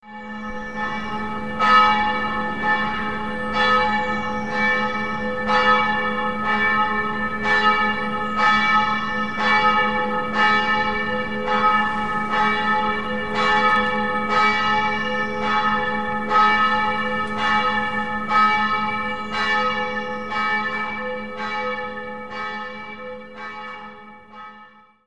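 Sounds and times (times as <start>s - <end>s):
church bell ringing: 0.0s - 25.0s.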